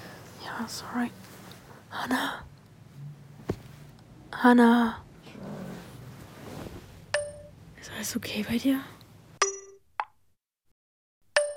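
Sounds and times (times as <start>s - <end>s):
speech: 0.5s - 1.3s, 1.9s - 3.1s, 4.3s - 5.0s, 7.8s - 8.9s
mobile phone notification dings: 7.1s - 7.5s, 9.4s - 10.1s, 11.4s - 11.5s.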